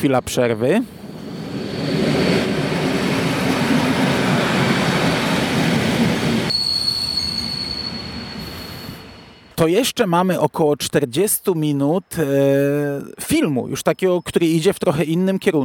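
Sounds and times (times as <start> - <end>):
speech: 0.0 - 2.0, 9.6 - 15.6
passing train wheels rumbling on rails: 0.6 - 9.1
high-pitched train squeal: 0.6 - 9.6.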